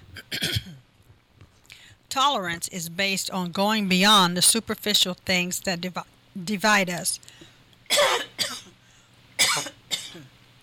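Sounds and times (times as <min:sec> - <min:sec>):
person coughing harshly after choking: 0:00.0 - 0:00.8, 0:07.9 - 0:08.8, 0:09.4 - 0:10.3
speech: 0:02.2 - 0:07.4.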